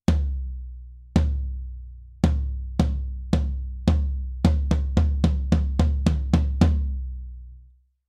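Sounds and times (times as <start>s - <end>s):
floor tom drum: 0.0s - 7.1s.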